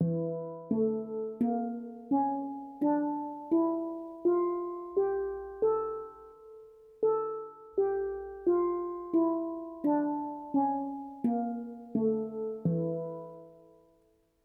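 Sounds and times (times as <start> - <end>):
melody in E Hijaz: 0.0 - 13.7.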